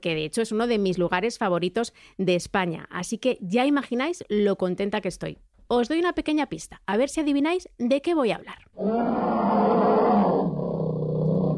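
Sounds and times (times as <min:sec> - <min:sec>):
speech: 0:00.0 - 0:10.0
bear roaring: 0:08.8 - 0:11.5.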